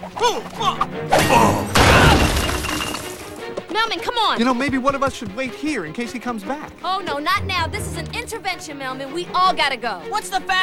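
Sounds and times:
speech: 0:00.2 - 0:02.2, 0:03.7 - 0:10.6
brick wall bursting apart with a loud crash: 0:01.2 - 0:03.4
spill of tumbling rubble: 0:01.2 - 0:03.7.

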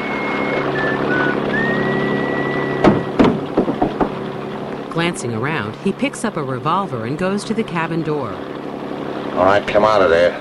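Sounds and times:
thin whistling tone: 0:00.0 - 0:03.2
boat engine droning while motoring out to sea: 0:00.0 - 0:10.3
sharp clattering knocks: 0:02.8 - 0:04.3
speech: 0:05.0 - 0:08.6, 0:09.4 - 0:10.3.

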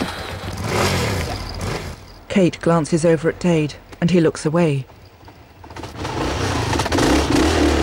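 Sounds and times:
motorbike engine revving as two riders roar off: 0:00.0 - 0:02.1, 0:05.6 - 0:07.8
speech: 0:02.4 - 0:04.9.

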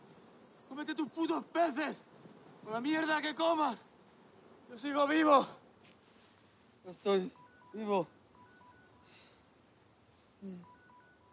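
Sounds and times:
speech: 0:00.8 - 0:03.9, 0:04.7 - 0:05.6, 0:06.8 - 0:08.2, 0:10.4 - 0:10.7
faint mobile phone ringtone on a beach: 0:07.2 - 0:09.5, 0:10.4 - 0:11.3.

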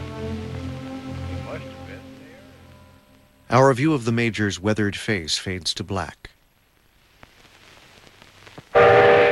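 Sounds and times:
speech: 0:03.5 - 0:06.3
loud train whistle blaring at a train station: 0:08.8 - 0:09.3.

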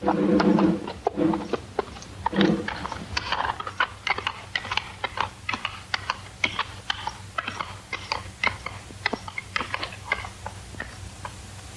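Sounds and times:
horse hooves clopping on stone: 0:00.0 - 0:11.0.

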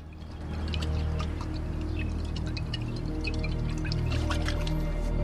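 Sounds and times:
whiskey pouring down a man's throat with glugging: 0:00.0 - 0:05.1
bottle cap unscrewing: 0:00.7 - 0:04.8.

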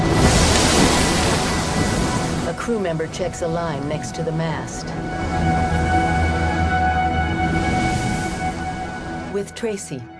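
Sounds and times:
wave splashing onto a ship's deck: 0:00.0 - 0:03.4
wind buffeting the microphone: 0:00.0 - 0:09.3
speech: 0:02.7 - 0:05.8, 0:09.4 - 0:10.1.

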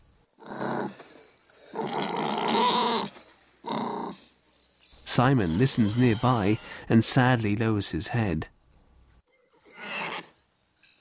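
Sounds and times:
pig being hunted with spears in a jungle squealing: 0:01.7 - 0:03.1, 0:05.2 - 0:06.8, 0:09.7 - 0:10.4
speech: 0:05.2 - 0:08.5.

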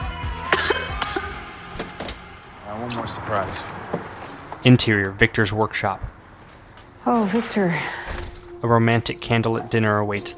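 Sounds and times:
woman coughing after a drag on a joint: 0:00.5 - 0:01.4
speech: 0:02.8 - 0:04.0, 0:04.6 - 0:06.2, 0:07.0 - 0:10.3.

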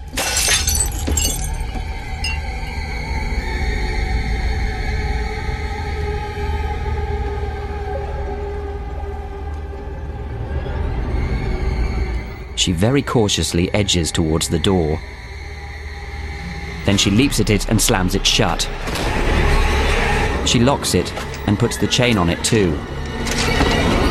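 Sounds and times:
drinking glass slipping off a sink edge and shattering on the floor: 0:00.0 - 0:02.5
low drone with held tones: 0:01.8 - 0:24.0
speech: 0:12.6 - 0:15.2, 0:16.9 - 0:19.0, 0:20.5 - 0:22.9.

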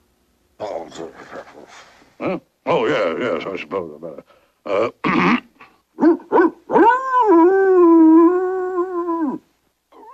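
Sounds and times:
speech: 0:00.9 - 0:05.4
puppy high-pitched howl: 0:06.0 - 0:10.1.

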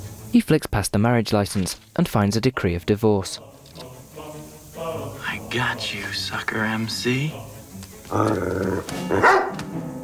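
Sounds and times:
speech: 0:00.3 - 0:03.5, 0:04.9 - 0:07.5, 0:08.1 - 0:09.9
dog barking: 0:08.9 - 0:09.7.

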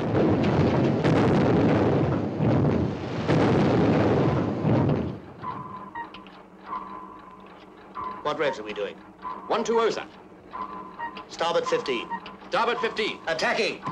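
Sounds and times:
explosions around a warship: 0:00.0 - 0:05.9
speech: 0:08.3 - 0:10.2, 0:11.3 - 0:13.9.

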